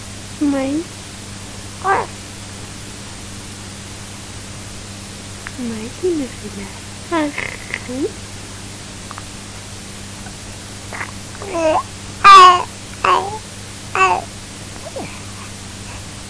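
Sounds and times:
steady low hum and hiss: 0.0s - 16.2s
speech: 0.4s - 1.0s, 1.8s - 2.1s, 5.6s - 8.3s, 11.5s - 12.0s
infant babbling with coos and squeals: 1.8s - 2.2s, 10.9s - 13.4s, 14.0s - 15.4s.

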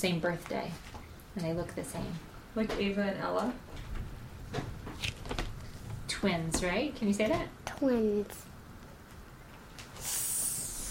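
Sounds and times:
speech: 0.0s - 3.8s, 6.2s - 8.5s
faint noise: 0.0s - 10.8s
voice imitating a snake's hiss: 10.0s - 10.8s.

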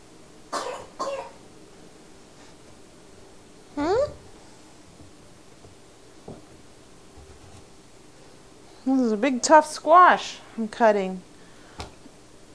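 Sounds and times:
child coughing: 0.5s - 1.4s
speech: 9.2s - 11.3s.

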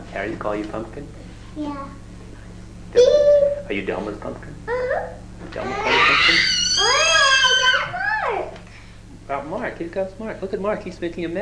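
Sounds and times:
speech: 0.1s - 2.0s, 2.9s - 7.1s, 9.3s - 11.3s
young child screaming a long shrill wail: 5.6s - 8.5s.

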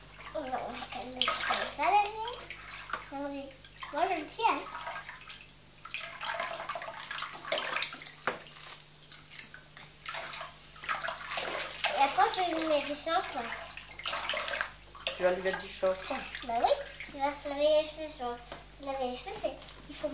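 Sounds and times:
water running from a tap into a bathtub: 0.0s - 20.1s
child talking: 0.3s - 2.5s, 3.1s - 4.8s, 11.9s - 13.6s, 15.7s - 20.1s
speech: 3.2s - 4.8s, 13.0s - 13.7s, 15.2s - 20.1s
adult talking: 15.2s - 16.3s.

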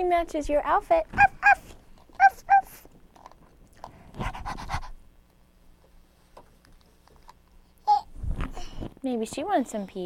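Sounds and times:
speech: 0.0s - 1.3s, 9.0s - 10.0s
small dog yipping: 1.1s - 2.8s
small dog breathy panting: 4.1s - 5.0s.

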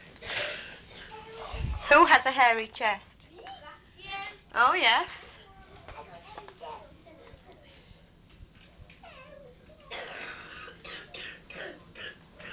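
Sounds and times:
faint noise: 0.0s - 12.5s
speech: 1.9s - 3.1s, 4.6s - 5.2s
rough breathy coughs: 9.9s - 12.5s.

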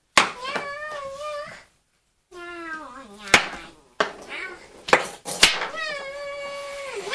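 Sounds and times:
child imitating cat meows: 0.3s - 1.7s, 2.3s - 3.8s, 5.7s - 7.1s.

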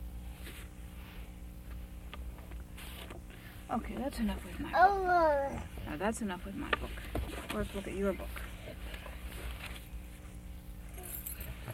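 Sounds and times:
low room rumble: 0.0s - 11.7s
speech: 3.7s - 8.4s
keys jangling: 10.9s - 11.7s.

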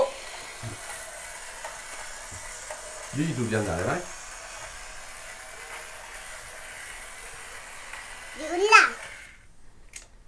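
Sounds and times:
train running with a whirring rumble: 0.0s - 9.7s
speech: 3.2s - 4.2s.

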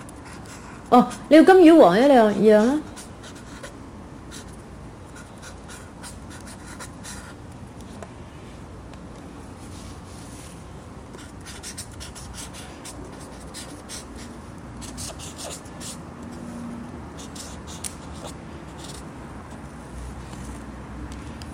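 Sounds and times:
grandfather writing with a black pen on paper: 0.0s - 1.2s, 2.9s - 3.7s, 4.3s - 7.4s, 11.2s - 16.0s, 17.2s - 19.0s
faint hum of room noise: 0.0s - 21.5s
speech: 0.9s - 2.9s.

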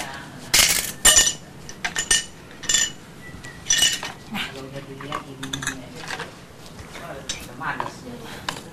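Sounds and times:
spoon clinking and scraping against dishes and a frying pan: 0.6s - 3.0s, 3.6s - 4.2s, 5.0s - 6.3s
speech: 4.9s - 5.6s.

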